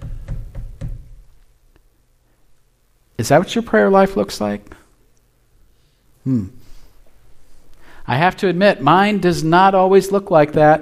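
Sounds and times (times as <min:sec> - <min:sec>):
dull thudding knocking on a solid surface: 0:00.0 - 0:01.2
speech: 0:03.2 - 0:04.8, 0:06.2 - 0:06.6, 0:08.1 - 0:10.8.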